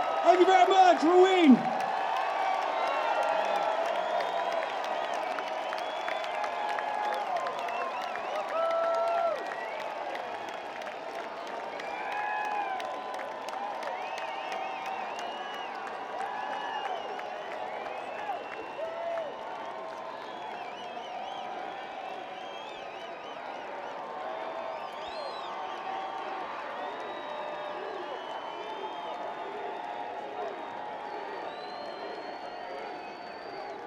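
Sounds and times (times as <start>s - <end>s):
crowd noise: 0.0s - 33.8s.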